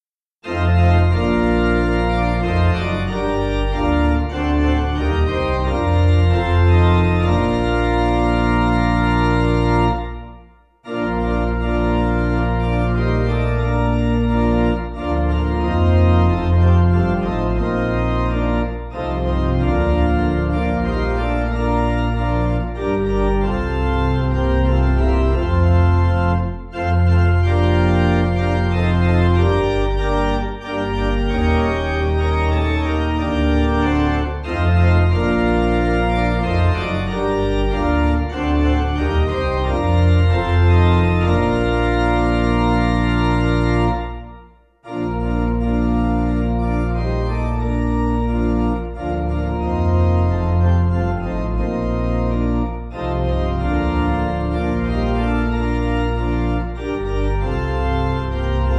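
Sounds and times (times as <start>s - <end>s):
pipe organ music: 0.4s - 58.7s.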